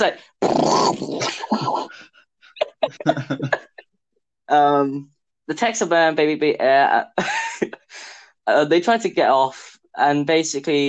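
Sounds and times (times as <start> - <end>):
speech: 0.0 - 2.2, 2.8 - 3.6, 4.5 - 10.8
person imitating a rabid dog growling and snarling: 0.4 - 2.0
laughter: 1.2 - 3.8.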